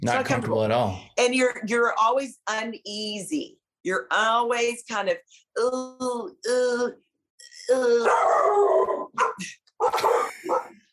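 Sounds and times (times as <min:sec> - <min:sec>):
speech: 0:00.0 - 0:10.6
dogs barking: 0:09.2 - 0:10.8.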